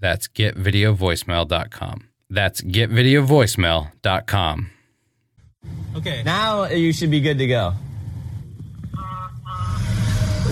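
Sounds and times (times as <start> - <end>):
speech: 0.0 - 4.8, 5.6 - 7.9
semi truck rumbling past: 7.7 - 10.4.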